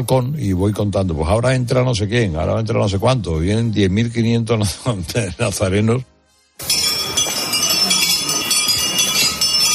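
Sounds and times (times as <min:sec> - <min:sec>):
speech: 0:00.0 - 0:06.8
metal vilortas clinking in an empalao procession at night in Valverde de la Vera: 0:06.6 - 0:09.7.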